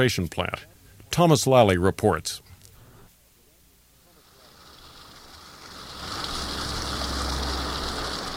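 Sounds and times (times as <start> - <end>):
speech: 0.0 - 2.4
mountain creek flowing: 4.0 - 8.3.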